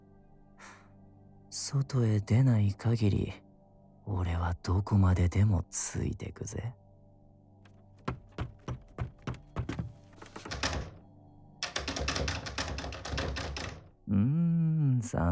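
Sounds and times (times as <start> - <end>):
speech: 1.5 - 3.4, 4.1 - 6.8, 15.1 - 15.3
sharp knocks and thunks on a locked door: 8.0 - 11.0, 11.6 - 13.9.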